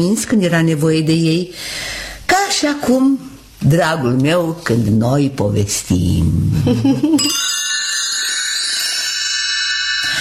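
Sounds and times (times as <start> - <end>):
speech: 0.0 - 7.6
bright high bell ringing: 7.2 - 10.1.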